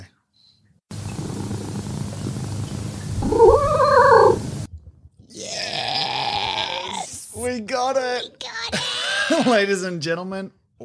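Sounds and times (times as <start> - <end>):
hiss-like noise: 0.9 - 4.7
cat yowling up a scale: 3.2 - 4.5
speech: 7.4 - 10.8.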